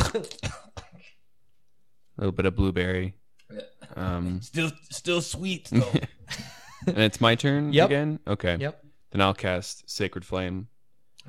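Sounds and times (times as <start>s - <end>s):
harsh throaty coughs: 0.0s - 1.2s
speech: 0.2s - 0.4s, 2.2s - 10.7s.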